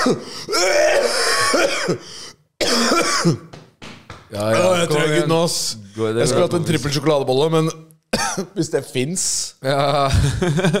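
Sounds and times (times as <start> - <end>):
person clearing throat: 0.0 - 2.0, 2.6 - 3.5, 8.2 - 8.6
person coughing in harsh rasping bursts: 0.0 - 3.5, 8.2 - 8.6
speech: 0.0 - 3.5, 4.3 - 10.7
laughter: 6.2 - 7.1, 9.7 - 10.7.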